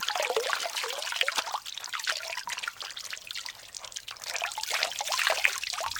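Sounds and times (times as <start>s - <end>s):
water trickling from a tap: 0.0s - 5.9s.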